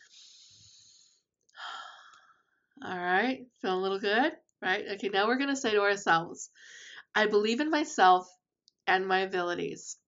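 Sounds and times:
deep breaths during a guided confidence exercise: 0.0 - 2.6, 6.6 - 7.1
speech: 2.8 - 10.0.

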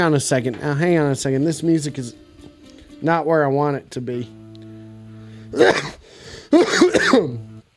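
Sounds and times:
speech: 0.0 - 2.2, 3.0 - 4.4, 5.5 - 7.5
steady low electrical hum: 3.6 - 7.7
person coughing harshly: 5.5 - 7.4.

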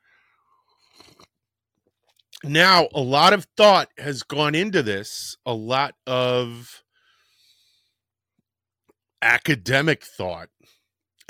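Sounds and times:
sipping coffee from a cup: 0.6 - 1.4
small mouth sounds: 0.7 - 1.4
speech: 2.4 - 6.8, 9.2 - 11.2.

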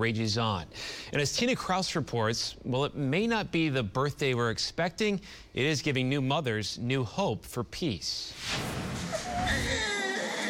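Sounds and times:
speech: 0.0 - 8.8
newborn baby crying: 9.2 - 10.4.

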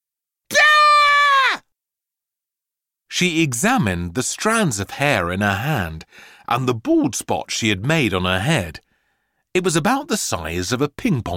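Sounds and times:
woman yelling in pain: 0.5 - 1.6
speech: 3.2 - 8.8, 9.5 - 11.3.

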